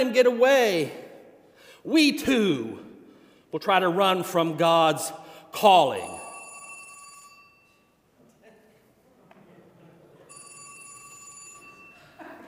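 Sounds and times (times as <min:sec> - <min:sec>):
speech: 0:00.0 - 0:01.0, 0:01.8 - 0:02.8, 0:03.5 - 0:06.2
old-style telephone bell ringing: 0:06.0 - 0:08.0, 0:10.3 - 0:12.2.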